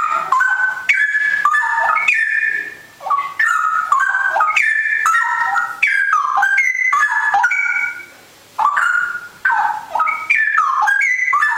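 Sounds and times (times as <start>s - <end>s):
Oriental magpie-robin song: 0.0s - 11.5s.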